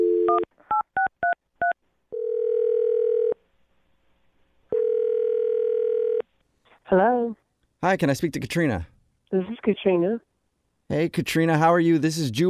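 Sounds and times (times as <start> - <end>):
steady phone tone: 0.0 - 1.4, 2.1 - 3.4, 4.7 - 6.2
speech: 6.9 - 10.3, 10.9 - 12.4.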